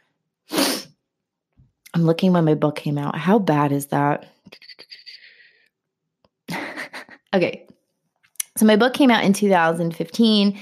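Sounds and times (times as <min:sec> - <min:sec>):
sharp breathy nasal sniffle: 0:00.5 - 0:00.9
speech: 0:02.0 - 0:04.7, 0:07.3 - 0:07.7, 0:08.6 - 0:10.5
laughter: 0:06.5 - 0:07.3.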